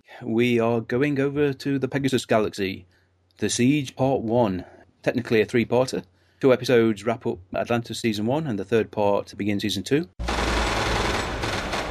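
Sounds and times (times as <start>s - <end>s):
speech: 0.2s - 10.3s
loud automatic gunfire: 10.2s - 11.9s.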